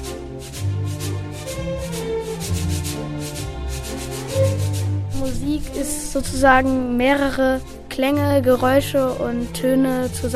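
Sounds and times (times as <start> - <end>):
sandpaper rubbed as a rhythm instrument: 0.0 - 6.8
speech: 5.4 - 10.3.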